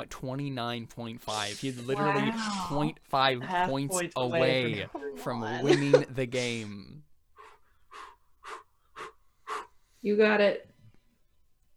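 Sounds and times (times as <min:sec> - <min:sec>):
speech: 0:00.0 - 0:07.1, 0:10.0 - 0:10.7
heavy breathing: 0:07.3 - 0:10.0.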